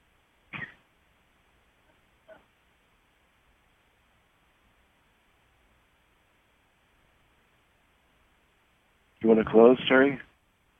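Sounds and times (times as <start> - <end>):
quiet hiss: 0.0 - 10.7
woman coughing: 0.5 - 0.8
speech: 9.2 - 10.3.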